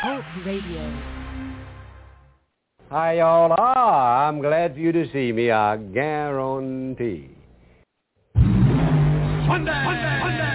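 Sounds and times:
speech: 0:00.1 - 0:01.7, 0:02.9 - 0:07.4, 0:09.5 - 0:10.5
rear-engine dragster engine revving at a drag strip in Spokane: 0:08.4 - 0:10.4.

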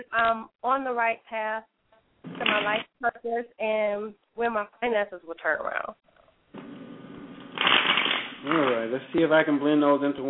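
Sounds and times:
speech: 0:00.0 - 0:06.0, 0:08.4 - 0:10.2
playing cards being shuffled: 0:06.6 - 0:08.9.

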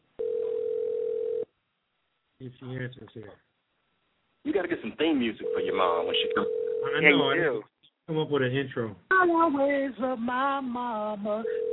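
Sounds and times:
electronic ringback tone over a phone line: 0:00.2 - 0:01.5, 0:05.4 - 0:07.4, 0:11.4 - 0:11.7
speech: 0:02.4 - 0:03.5, 0:04.4 - 0:11.6.

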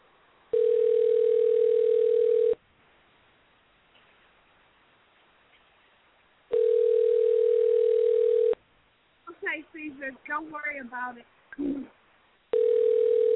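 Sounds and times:
telephone ringback tone while a call rings out: 0:00.5 - 0:02.6, 0:06.5 - 0:08.6, 0:12.5 - 0:13.3
person talking: 0:09.3 - 0:12.0.

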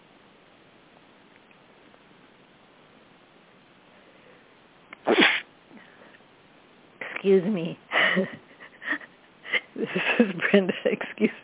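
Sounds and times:
person sneezing from spring hay fever: 0:05.0 - 0:05.4
person talking: 0:07.0 - 0:07.8, 0:09.7 - 0:11.4.

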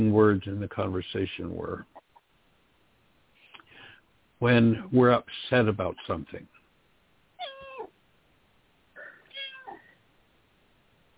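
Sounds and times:
speech: 0:00.0 - 0:01.9, 0:04.4 - 0:06.5
cat meowing: 0:07.4 - 0:07.9, 0:09.0 - 0:10.0.

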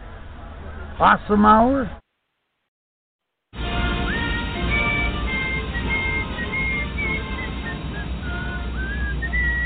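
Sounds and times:
speech: 0:01.0 - 0:02.0
person whistling a wandering tune of short sliding notes: 0:04.0 - 0:09.6.

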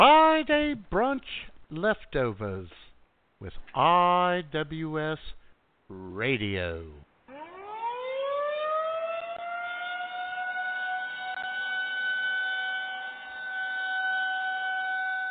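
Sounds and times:
speech: 0:00.7 - 0:07.1
town noon civil defense siren wailing: 0:07.3 - 0:15.2.

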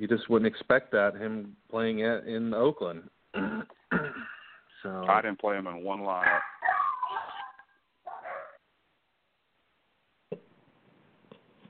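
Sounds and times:
speech: 0:00.0 - 0:03.8, 0:04.8 - 0:06.5
dog giving short sharp barks: 0:06.2 - 0:08.6.

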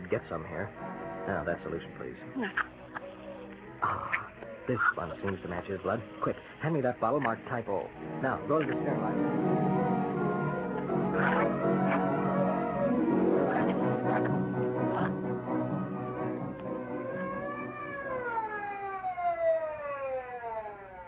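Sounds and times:
busy clattering noise: 0:00.0 - 0:19.0
speech: 0:00.1 - 0:03.1, 0:03.8 - 0:09.8, 0:11.2 - 0:12.0
ambulance siren: 0:08.0 - 0:21.0.

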